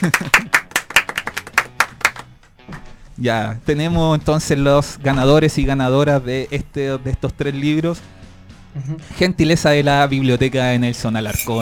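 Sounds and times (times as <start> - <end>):
speech: 0.0 - 0.6, 3.2 - 11.6
people applauding a prize winner at a book giveaway: 0.0 - 2.9.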